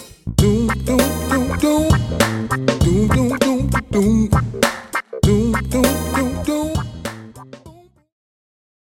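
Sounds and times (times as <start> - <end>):
booming sounds: 0.5 - 7.2.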